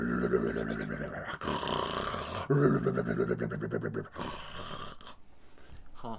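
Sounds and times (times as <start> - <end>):
deep rumbling creature snore sound effect: 0.0 - 5.2.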